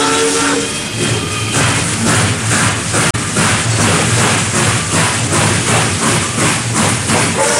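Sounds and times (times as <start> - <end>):
steam locomotive whistle: 0.0 - 0.8, 7.3 - 7.5
steam locomotive chuffing: 0.0 - 7.5.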